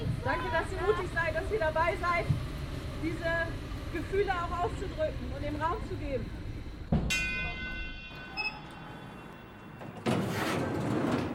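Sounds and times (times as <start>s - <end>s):
loud rushing roar of a passing train at Anhalter Bahnhof: 0.0s - 10.0s
speech: 0.2s - 6.4s
brief chime at a train station: 7.1s - 10.0s
high metallic squeal at a train station: 7.1s - 10.6s.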